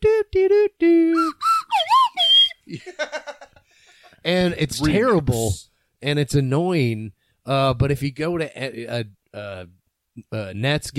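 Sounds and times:
person whistling a sponsor's advertising jingle: 1.1s - 2.6s
person laughing rhythmically: 1.2s - 3.6s, 4.8s - 5.2s
speech: 4.3s - 10.9s.

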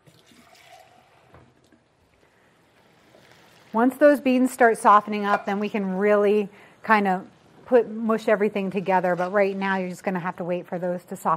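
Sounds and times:
water pouring into a cooking pot: 0.0s - 4.7s
speech: 3.7s - 11.3s.

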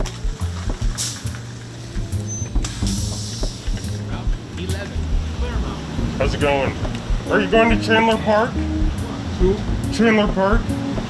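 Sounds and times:
city bus engine droning on a city's west side: 0.0s - 11.0s
city bus air brakes hissing: 0.9s - 4.2s
speech: 6.2s - 8.8s, 9.4s - 10.8s.

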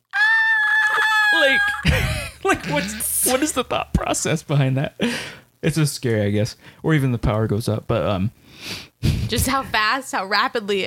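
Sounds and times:
voice imitating a scream: 0.0s - 1.9s
speech: 1.4s - 10.8s.

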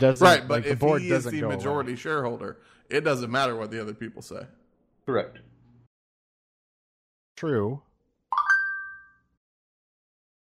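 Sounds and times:
speech: 0.0s - 5.5s, 7.4s - 7.9s
bright two-tone notification chime from an Android phone: 8.4s - 9.3s.

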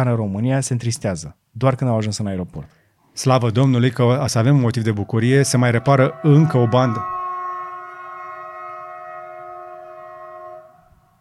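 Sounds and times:
speech: 0.0s - 7.1s
train horn long steady blast: 4.7s - 11.2s.

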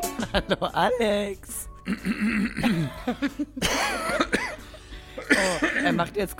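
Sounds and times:
laughter: 0.2s - 1.0s, 2.2s - 4.4s
speech: 0.3s - 4.5s, 5.4s - 6.3s
harsh cough-like bursts: 1.8s - 3.0s, 3.6s - 4.6s, 5.2s - 5.9s
person clearing throat: 1.8s - 3.1s, 3.6s - 4.6s, 5.2s - 6.0s.

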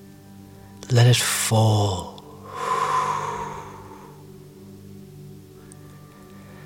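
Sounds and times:
speech: 0.9s - 2.2s
deep airy exhale during a guided breathing exercise: 2.3s - 4.4s.

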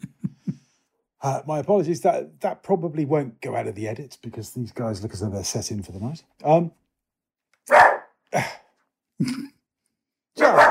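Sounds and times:
speech: 1.2s - 6.8s
neighbourhood dogs barking: 7.7s - 8.2s, 10.4s - 10.6s.

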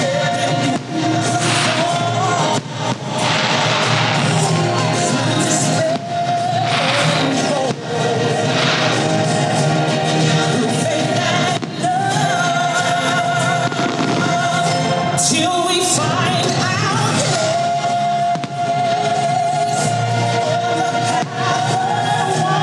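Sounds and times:
fireworks: 0.2s - 12.9s, 13.6s - 20.0s, 21.0s - 22.4s.

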